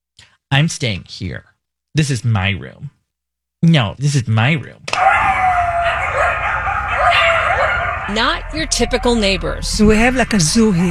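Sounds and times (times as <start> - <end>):
speech: 0.5 - 3.0, 3.6 - 5.1, 8.1 - 10.8
coyotes howling and yipping in an abandoned development in West Hollywood: 4.9 - 10.8.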